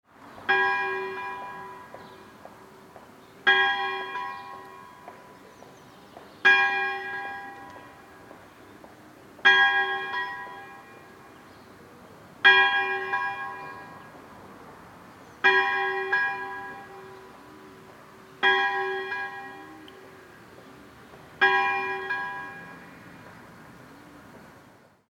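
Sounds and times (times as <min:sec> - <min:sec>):
small church bell: 0:00.5 - 0:05.7, 0:06.4 - 0:08.4, 0:09.4 - 0:11.5, 0:12.4 - 0:14.2, 0:15.4 - 0:20.2, 0:21.4 - 0:23.0.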